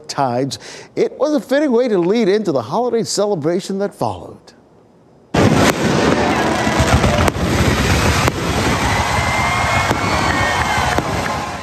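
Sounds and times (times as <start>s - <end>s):
speech: 0.2s - 4.6s
fireworks display booming and crackling: 5.3s - 11.6s
faint crowd noise: 5.8s - 11.6s.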